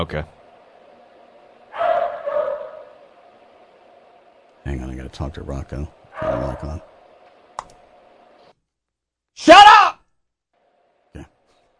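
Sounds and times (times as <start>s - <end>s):
speech: 0.0s - 0.4s, 4.6s - 6.9s
dog barking: 1.7s - 3.0s, 6.1s - 6.8s.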